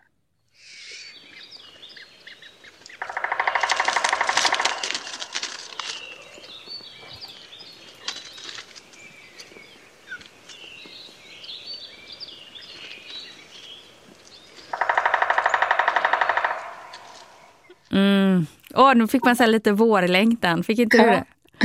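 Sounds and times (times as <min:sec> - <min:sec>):
birds chirping and singing: 0:00.5 - 0:17.9
three-toed woodpecker drumming: 0:00.7 - 0:17.9
speech: 0:18.8 - 0:21.6.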